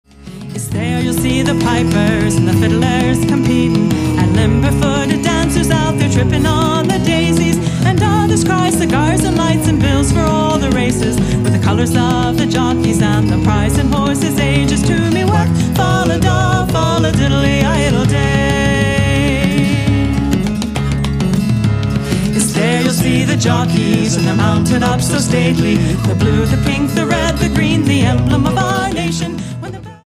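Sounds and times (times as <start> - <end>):
Irish band playing: 0.1 - 30.0.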